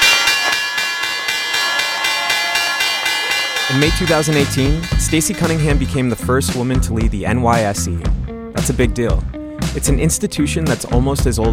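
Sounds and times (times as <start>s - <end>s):
stock exchange opening bell ringing: 0.0s - 6.2s
speech: 3.7s - 11.5s.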